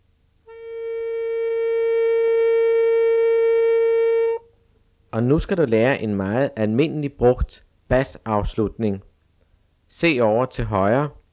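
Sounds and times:
accordion playing a sustained note A: 0:00.5 - 0:04.6
speech: 0:05.2 - 0:09.1, 0:09.9 - 0:11.2.

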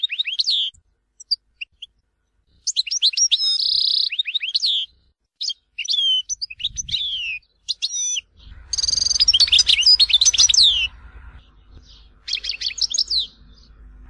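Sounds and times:
European goldfinch twittering song: 0:00.0 - 0:14.0
low rumbling noise: 0:06.6 - 0:07.3, 0:08.2 - 0:14.0.

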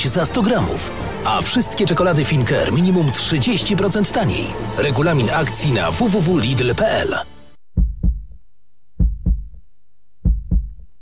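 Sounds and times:
speech: 0:00.0 - 0:07.3
heartbeat of a man in his forties or fifties: 0:07.8 - 0:08.4, 0:09.0 - 0:09.6, 0:10.2 - 0:10.9.

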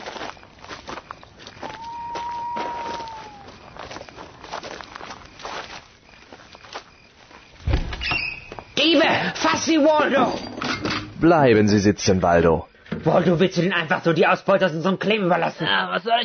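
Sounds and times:
footsteps walking into a hut: 0:00.0 - 0:08.8
heavy thump: 0:07.6 - 0:08.1
speech: 0:08.8 - 0:10.4, 0:11.2 - 0:16.2.

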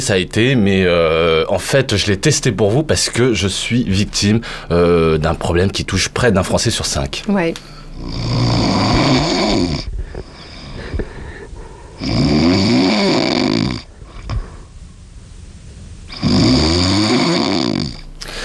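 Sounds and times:
speech: 0:00.0 - 0:09.4
quiet breathing: 0:04.4 - 0:05.0, 0:07.6 - 0:08.5, 0:09.8 - 0:12.2, 0:13.8 - 0:16.5, 0:17.9 - 0:18.4
person snoring: 0:07.9 - 0:14.7, 0:16.1 - 0:18.4.

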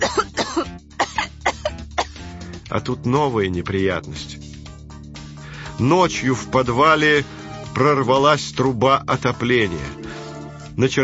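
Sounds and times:
boy coughing: 0:00.0 - 0:02.2
speech: 0:02.8 - 0:04.4, 0:05.8 - 0:10.2, 0:10.8 - 0:11.0.

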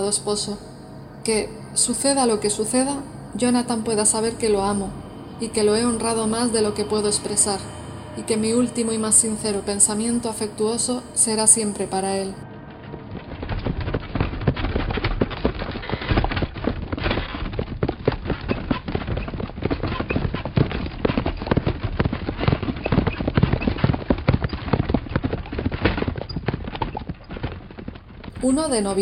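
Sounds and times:
speech: 0:00.0 - 0:12.5, 0:28.4 - 0:28.9
horses' hooves clip-clopping while travelling at a good pace: 0:12.5 - 0:28.9.

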